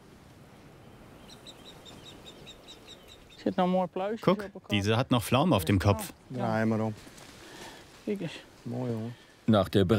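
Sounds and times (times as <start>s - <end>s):
steady outdoor hiss: 0.0s - 9.9s
mother marsh harrier calling from above: 0.8s - 3.7s
speech: 3.4s - 7.2s, 8.0s - 9.9s.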